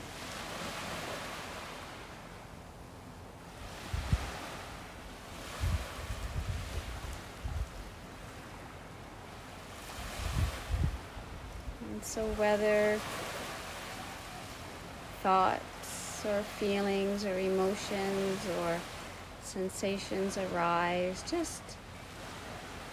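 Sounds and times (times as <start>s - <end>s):
ocean waves in the Bahamas washing onto a shore: 0.0s - 22.9s
wind rumble: 3.5s - 9.2s, 9.9s - 12.6s
speech: 12.1s - 13.2s, 15.2s - 21.7s.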